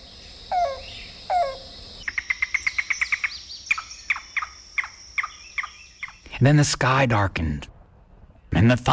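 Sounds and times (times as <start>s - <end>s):
rain crow cuckoo calling: 0.0s - 6.3s
speech: 6.4s - 7.7s, 8.6s - 8.9s.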